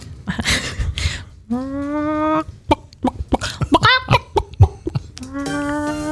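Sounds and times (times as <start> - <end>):
speech: 1.5 - 1.8
person vocally imitating a clucking hen: 1.5 - 6.1.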